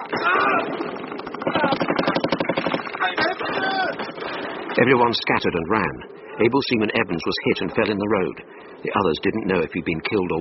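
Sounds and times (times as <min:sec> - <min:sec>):
gunfire at point-blank range: 0:00.0 - 0:04.8
speech: 0:04.8 - 0:10.3.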